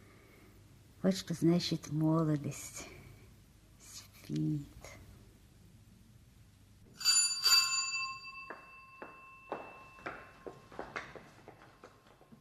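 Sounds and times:
speech: 1.0s - 3.0s, 4.3s - 5.0s
doorbell ringing: 6.9s - 10.8s.

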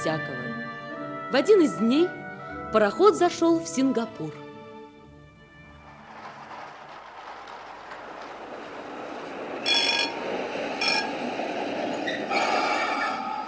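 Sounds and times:
speech: 0.0s - 0.5s, 1.3s - 4.4s
tram rolling along its rails: 5.0s - 13.4s
tram wheels squealing: 9.6s - 11.2s, 11.9s - 13.4s.

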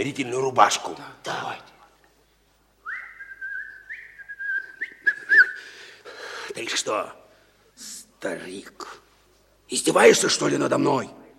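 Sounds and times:
speech: 0.0s - 1.7s, 6.6s - 7.2s, 7.8s - 9.0s, 9.7s - 11.2s
person whistling a tune while walking: 2.8s - 5.8s.

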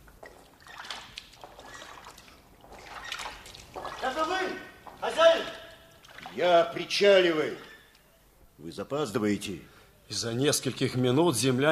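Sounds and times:
oars dipping into a river at night: 0.0s - 6.8s
low watery wash: 0.0s - 7.6s
speech: 6.4s - 7.7s, 8.7s - 11.7s.

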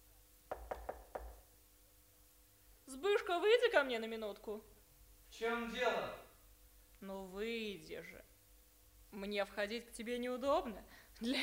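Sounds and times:
firm knocking on a wooden door: 0.5s - 1.4s
speech: 2.9s - 4.7s, 5.3s - 6.2s, 7.0s - 8.3s, 9.1s - 11.4s.

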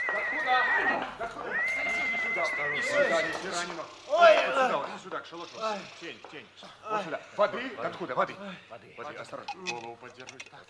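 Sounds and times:
horse carrying a rider whinnying: 0.0s - 4.4s
speech: 2.4s - 10.6s.

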